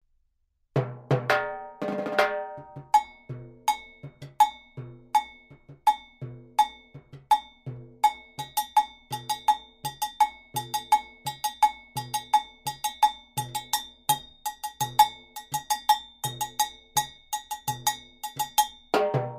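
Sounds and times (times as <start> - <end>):
cowbell: 2.3 - 19.3.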